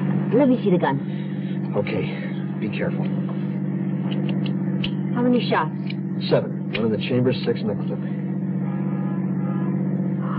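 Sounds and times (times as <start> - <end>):
car engine droning as the vehicle drives along: 0.0 - 10.3
road rumble: 0.0 - 10.3
speech: 0.3 - 3.2, 5.2 - 8.2.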